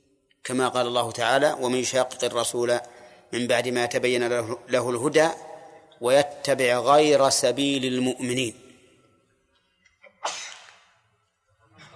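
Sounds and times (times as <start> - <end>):
speech: 0.5 - 8.6
person sneezing: 10.2 - 10.8.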